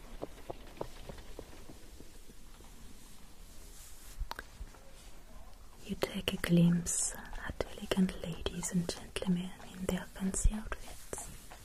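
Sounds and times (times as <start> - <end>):
horse hooves clip-clopping on a cobbled town street: 0.0 - 2.4, 5.7 - 11.6
speech: 6.0 - 7.2, 8.0 - 11.0.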